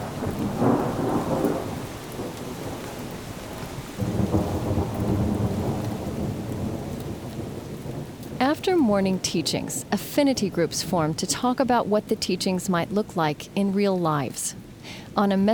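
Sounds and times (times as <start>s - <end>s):
rumbling thunder: 0.0s - 11.2s
steady rain on a late summer day in eastern Wisconsin: 0.0s - 15.5s
speech: 8.6s - 15.5s.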